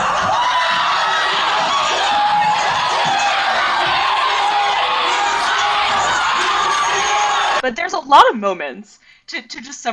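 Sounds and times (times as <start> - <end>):
large cast screaming and shouting on stage: 0.0 - 7.6
speech: 7.6 - 9.9.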